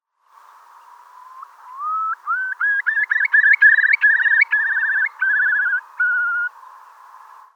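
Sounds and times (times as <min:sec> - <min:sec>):
Eurasian curlew calling: 0:00.9 - 0:06.6.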